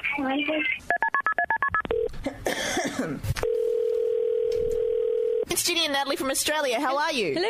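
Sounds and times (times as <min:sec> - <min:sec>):
speech: 0:00.2 - 0:00.9, 0:05.5 - 0:07.4
telephone ringing tone on outgoing call: 0:00.9 - 0:02.1, 0:03.4 - 0:05.5.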